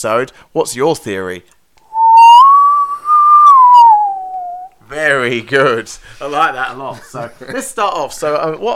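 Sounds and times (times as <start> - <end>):
speech: 0.0 - 1.6, 5.0 - 8.7
person whistling a short tune: 1.9 - 4.7.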